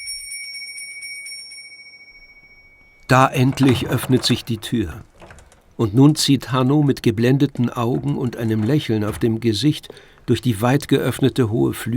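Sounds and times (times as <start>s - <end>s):
small silver bell ringing: 0.0s - 3.2s
speech: 3.1s - 5.1s, 5.8s - 11.9s.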